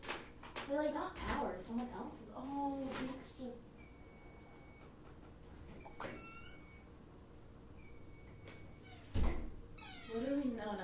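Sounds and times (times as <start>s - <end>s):
speech: 0.7s - 3.7s, 10.1s - 10.8s
fire alarm high-pitched electronic tones: 3.7s - 5.0s, 5.7s - 7.0s, 7.7s - 9.1s.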